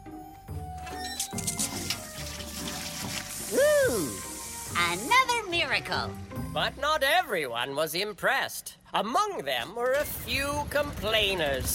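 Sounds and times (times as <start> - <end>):
water flowing in a steady rush: 1.3 - 7.4
speech: 4.9 - 11.7.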